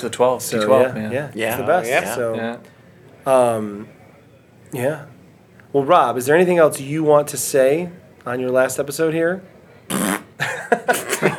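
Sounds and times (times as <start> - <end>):
speech: 0.0 - 4.0, 4.7 - 5.1, 5.7 - 10.1, 10.7 - 11.3
loud fart: 9.9 - 10.4
laughter: 10.4 - 11.3.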